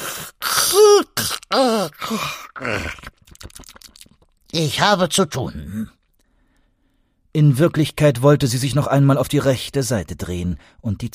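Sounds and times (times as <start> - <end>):
grandmother giving a theatrical vocal yawn: 0.4 - 2.8
speech: 0.7 - 3.1, 4.5 - 6.0, 7.4 - 11.1.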